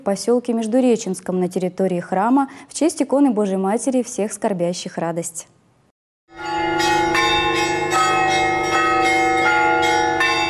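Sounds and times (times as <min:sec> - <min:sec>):
speech: 0:00.0 - 0:05.6
church bells pealing: 0:06.3 - 0:10.4.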